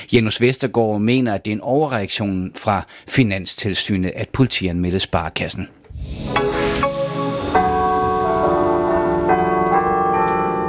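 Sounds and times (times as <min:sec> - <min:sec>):
speech: 0:00.1 - 0:06.6
newly installed cathedral carillon bells ringing a melody: 0:07.6 - 0:10.6.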